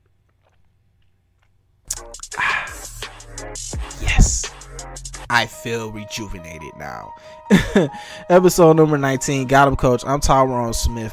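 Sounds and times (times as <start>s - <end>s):
sipping water from a glass: 0.0s - 2.7s
soft swallow: 0.0s - 2.8s
faint mouth sounds: 1.9s - 4.8s
speech: 3.6s - 11.1s.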